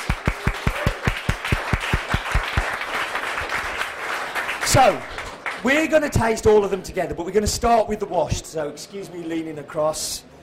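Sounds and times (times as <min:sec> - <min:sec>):
audience applause for bar staff: 0:00.0 - 0:05.9
speech: 0:04.8 - 0:10.3.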